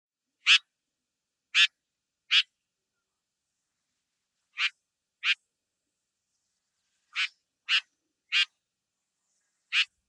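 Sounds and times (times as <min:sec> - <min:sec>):
tiger shrike giving harsh rasping call notes: 0:04.6 - 0:05.4, 0:07.1 - 0:08.5.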